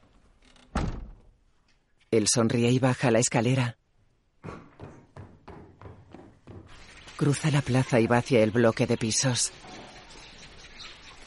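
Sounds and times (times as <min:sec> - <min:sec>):
house front door shutting: 0:00.4 - 0:01.4
speech: 0:02.1 - 0:03.8, 0:07.2 - 0:09.7.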